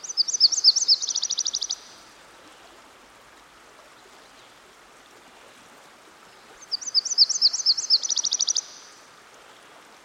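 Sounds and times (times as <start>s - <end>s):
Myrtle warbler singing by a stream: 0.0s - 1.9s, 6.7s - 8.8s
soft steady hiss: 0.0s - 10.0s.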